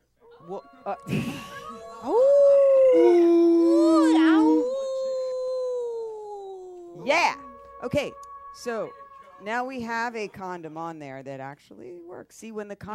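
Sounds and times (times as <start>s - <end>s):
speech: 0.5s - 2.2s, 7.9s - 12.9s
person imitating a wolf howl: 0.8s - 9.7s.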